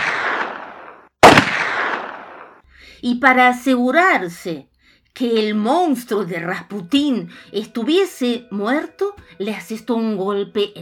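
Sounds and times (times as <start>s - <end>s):
gunshot fired at a man: 0.0s - 2.6s
speech: 3.0s - 10.8s.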